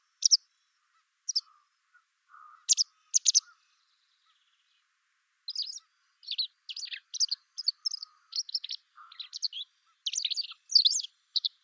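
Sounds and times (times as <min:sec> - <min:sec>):
white wagtail Motacilla alba giving sharp high chirping calls: 0:00.2 - 0:00.4, 0:01.3 - 0:01.5, 0:02.7 - 0:03.5, 0:05.5 - 0:11.6.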